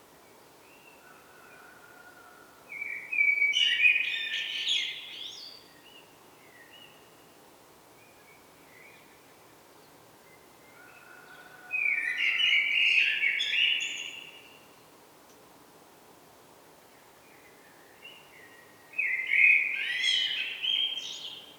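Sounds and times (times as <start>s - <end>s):
common blackbird Turdus merula singing: 2.8s - 5.6s, 11.8s - 14.5s, 19.0s - 21.5s.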